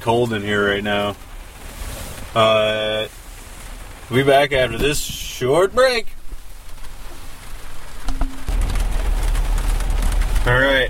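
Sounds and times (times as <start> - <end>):
speech: 0.0 - 1.3, 2.3 - 3.2, 4.1 - 6.2, 10.5 - 10.8
cold rain falling outdoors: 0.0 - 10.8
brief low tone: 8.1 - 10.4.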